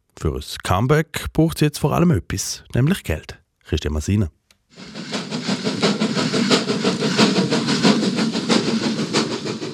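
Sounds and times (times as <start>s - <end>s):
speech: 0.2s - 5.0s
old RhB steam locomotive with a large boiler chugging and puffing steam: 4.7s - 9.7s
metallic rattling of steam locomotive: 4.8s - 9.7s.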